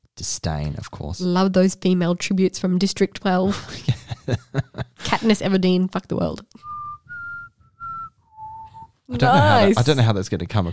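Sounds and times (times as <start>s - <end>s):
speech: 0.2s - 6.7s, 9.1s - 10.7s
laughter: 3.5s - 5.4s, 9.2s - 10.1s
person whistling a short tune: 6.6s - 9.6s.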